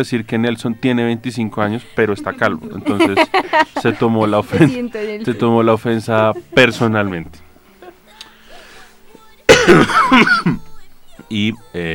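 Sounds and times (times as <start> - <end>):
speech: 0.0 - 7.4, 9.6 - 10.7, 11.3 - 11.9
laughter: 1.6 - 8.8
person coughing: 9.5 - 10.6.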